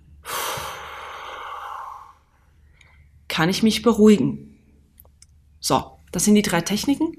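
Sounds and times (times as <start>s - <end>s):
long deliberate exhale to calm nerves: 0.2s - 3.0s
speech: 3.4s - 4.5s, 5.6s - 7.1s.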